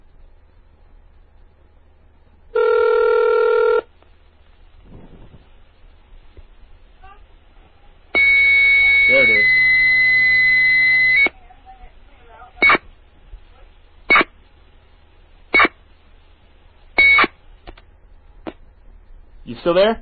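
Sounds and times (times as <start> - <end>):
steady modem line tone: 2.5 - 3.9, 8.2 - 11.4, 17.0 - 17.3
longer harsh buzzing tone: 2.5 - 4.0, 8.1 - 11.4, 12.6 - 12.9, 14.0 - 14.4, 15.4 - 15.8, 16.9 - 17.4
short evenly spaced electronic bursts: 8.1 - 11.4, 12.6 - 13.0, 14.0 - 14.5, 15.4 - 16.1, 16.9 - 17.5.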